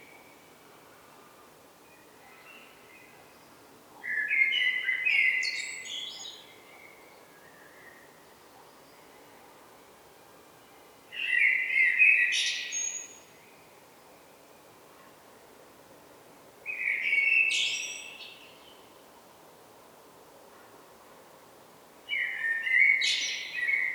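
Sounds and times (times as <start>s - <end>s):
common blackbird Turdus merula song: 1.9s - 9.1s, 11.1s - 13.7s, 16.7s - 18.9s, 22.1s - 23.9s.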